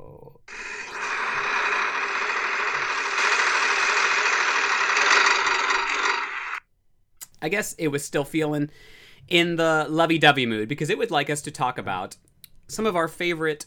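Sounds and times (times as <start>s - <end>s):
prize wheel spinning: 0.5s - 6.6s
speech: 7.4s - 13.6s.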